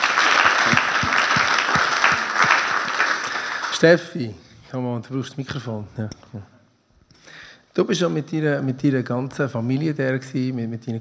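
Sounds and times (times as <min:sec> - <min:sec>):
crowd applauding: 0:00.0 - 0:03.9
speech: 0:03.8 - 0:06.5, 0:07.8 - 0:10.9.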